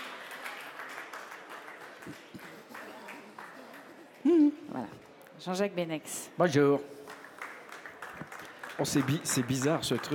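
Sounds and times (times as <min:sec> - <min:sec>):
audience applause of many hands clapping: 0:00.0 - 0:04.2, 0:07.1 - 0:10.1
speech: 0:02.0 - 0:02.5, 0:04.5 - 0:07.0, 0:08.8 - 0:10.1.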